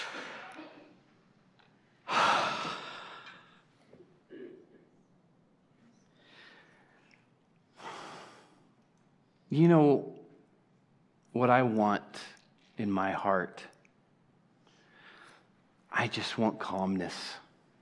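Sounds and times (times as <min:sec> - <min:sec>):
deep breaths: 0:02.0 - 0:03.6, 0:06.1 - 0:08.7, 0:14.6 - 0:15.5
speech: 0:09.5 - 0:10.1, 0:11.4 - 0:13.7, 0:16.0 - 0:17.4.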